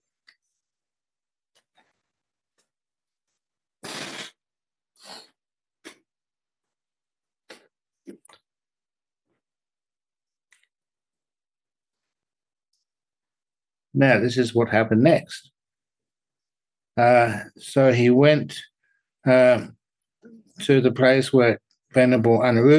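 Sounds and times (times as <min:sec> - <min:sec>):
nose blowing into a tissue: 0:03.8 - 0:04.4, 0:05.0 - 0:05.4
sniffs and snuffling bursts: 0:03.8 - 0:04.4
speech: 0:14.0 - 0:15.6, 0:17.0 - 0:19.8, 0:20.6 - 0:22.7.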